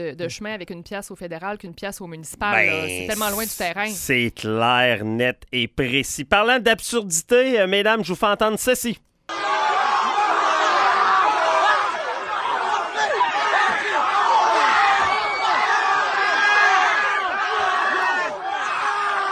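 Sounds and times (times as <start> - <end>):
speech: 0.0 - 9.4
crowd of about a hundred young people shouting and cheering: 2.6 - 3.3, 9.3 - 19.2.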